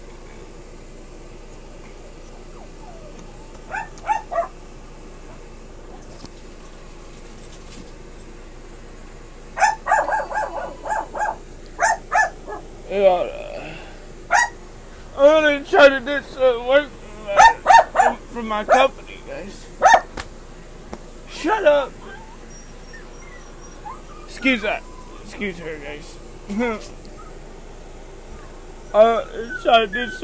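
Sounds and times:
steady low hum: 0.0s - 30.2s
dog barking: 3.7s - 4.6s, 9.6s - 12.7s, 14.3s - 14.6s, 17.4s - 18.9s, 19.8s - 20.1s
speech: 25.4s - 27.0s, 29.0s - 30.2s.

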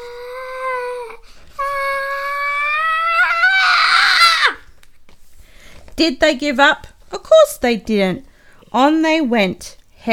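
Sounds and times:
person screaming: 0.2s - 4.6s
speech: 6.0s - 10.1s.

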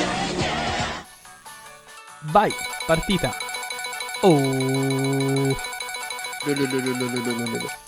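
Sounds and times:
speech: 2.2s - 3.4s, 4.2s - 5.7s, 6.4s - 7.8s
bright ringing tone: 2.5s - 7.8s
prize wheel spinning and clicking: 2.5s - 7.8s.

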